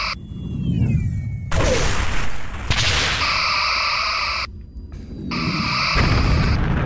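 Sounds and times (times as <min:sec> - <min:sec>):
deep rumble: 0:00.1 - 0:03.3, 0:04.4 - 0:06.8
starship weapons firing energy blasts: 0:01.5 - 0:04.4, 0:05.3 - 0:06.8.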